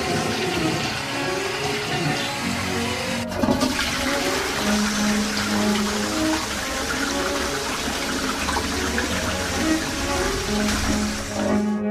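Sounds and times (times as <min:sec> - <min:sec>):
toilet flushing with rush and gurgle of water: 0:00.0 - 0:11.8.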